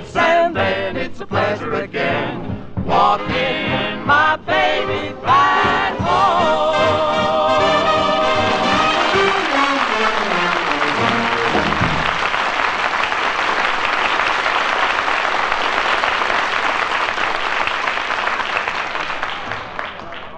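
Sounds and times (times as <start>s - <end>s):
song music: 0.0s - 12.5s
speech: 1.1s - 2.4s
large crowd applauding: 8.3s - 20.3s.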